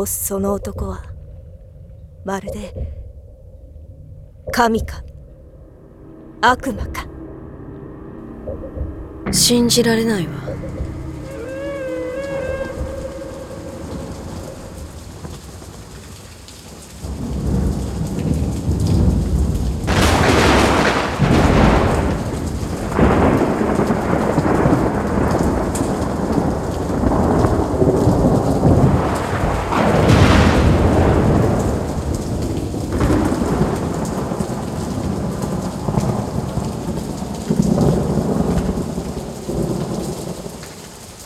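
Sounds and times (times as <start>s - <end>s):
speech: 0.0s - 1.1s, 2.2s - 3.0s, 4.5s - 5.1s, 6.4s - 7.1s, 8.5s - 10.9s
low rumbles of thunder: 4.2s - 41.2s
steady heavy rain pouring: 9.3s - 41.2s.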